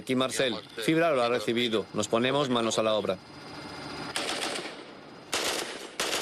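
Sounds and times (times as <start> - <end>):
speech: 0.0 - 3.5
steady hiss: 0.0 - 6.1
automatic gunfire bursts fired on command: 4.1 - 6.1.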